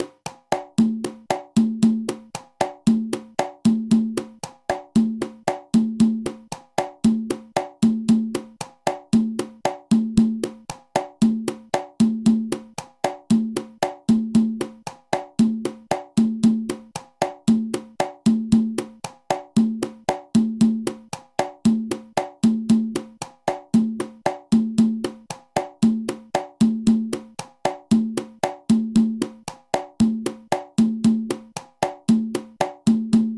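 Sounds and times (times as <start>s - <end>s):
congas playing cha cha cha rhythm: 0.0s - 33.3s.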